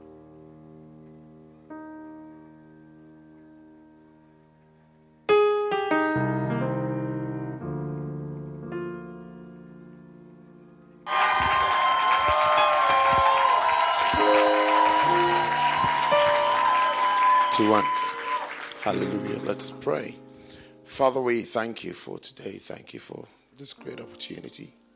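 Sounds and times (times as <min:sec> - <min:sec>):
held keyboard chords: 0:00.0 - 0:21.6
large church audience clapping and cheering: 0:11.1 - 0:19.6
speech: 0:17.6 - 0:18.0, 0:18.8 - 0:20.3, 0:20.9 - 0:24.8.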